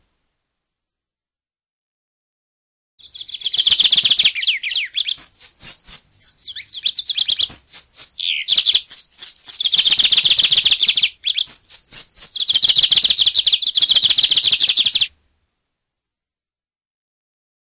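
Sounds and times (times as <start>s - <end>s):
Bigodinho singing: 3.0s - 15.1s.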